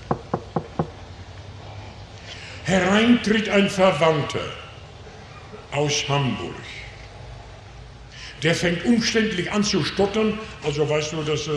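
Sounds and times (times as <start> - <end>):
knocking on a door: 0.0 - 1.0
speech: 2.7 - 4.6, 5.7 - 6.8, 8.4 - 11.5.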